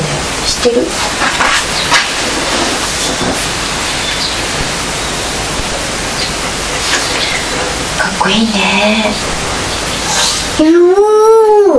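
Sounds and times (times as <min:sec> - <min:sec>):
speech: 0:00.6 - 0:01.5, 0:08.2 - 0:09.4, 0:10.6 - 0:11.7
train rolling along tracks with rumble and hiss: 0:02.2 - 0:10.7.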